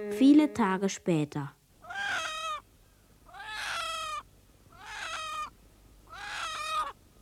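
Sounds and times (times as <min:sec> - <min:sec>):
speech: 0:00.2 - 0:01.5
chickens squawking on a neighbour's lawn: 0:01.9 - 0:02.6, 0:03.3 - 0:05.5, 0:06.1 - 0:06.9.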